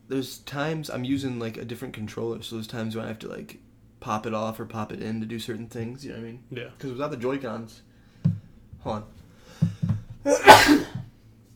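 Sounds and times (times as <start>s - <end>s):
speech: 0.1s - 7.9s, 8.8s - 9.2s, 10.2s - 10.8s
loud sneeze with short catching breaths: 10.3s - 11.0s.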